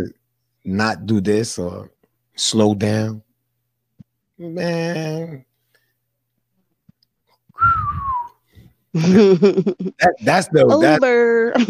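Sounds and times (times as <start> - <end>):
speech: 0.0 - 3.3, 4.4 - 5.5, 9.0 - 11.6
short human whistle sliding downward in pitch: 7.6 - 8.6.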